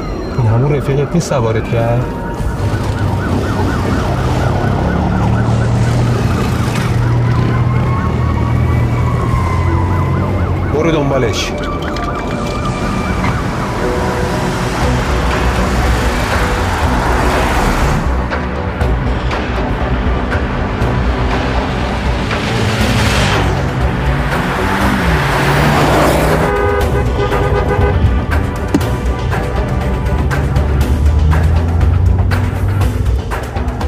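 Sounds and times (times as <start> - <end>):
sirens wailing: 0.0 - 33.8
speech: 0.6 - 2.8, 10.8 - 11.8
car engine rumble driving through busy traffic: 2.0 - 33.8
car horns tooting: 24.7 - 29.0.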